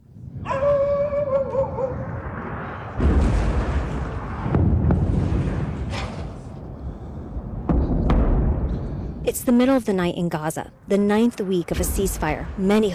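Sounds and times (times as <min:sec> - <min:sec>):
heavy rumbling explosions from airstrikes at night: 0:00.0 - 0:12.9
dog howling: 0:00.4 - 0:02.2
speech: 0:09.4 - 0:12.9.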